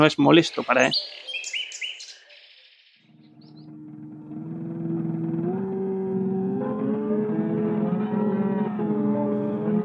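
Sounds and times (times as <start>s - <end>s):
speech: 0.0s - 1.2s
high bird-like chirps in a futurist noise-music piece: 0.4s - 3.7s
loud sustained buzzing drone with gliding harmonic pitches: 3.1s - 9.8s.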